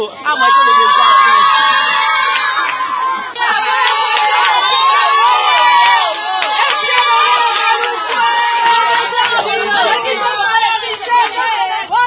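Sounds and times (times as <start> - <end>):
market vendors shouting and cheering with joy at a new market in Maluku: 0.2 - 12.0
whoops: 0.4 - 9.0.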